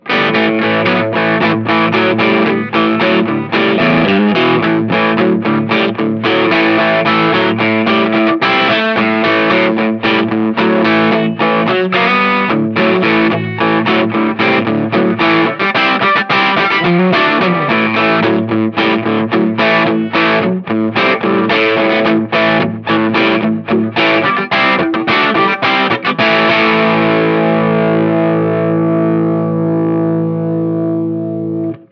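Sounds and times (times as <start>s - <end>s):
dirty rock bridge pickup guitar: 0.0s - 31.8s.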